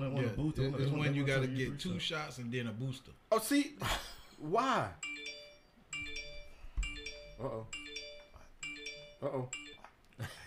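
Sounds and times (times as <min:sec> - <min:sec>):
speech: 0:00.0 - 0:05.1, 0:07.4 - 0:07.8, 0:09.2 - 0:09.6, 0:10.2 - 0:10.4
phone ringtone chiming melody: 0:05.0 - 0:09.9.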